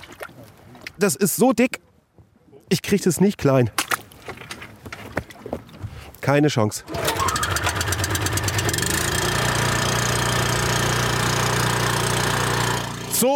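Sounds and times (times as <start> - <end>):
speech: 1.0 - 1.8, 2.9 - 3.8, 6.3 - 7.0
small generator engine powering electrofishing equipment on a river: 6.9 - 13.2.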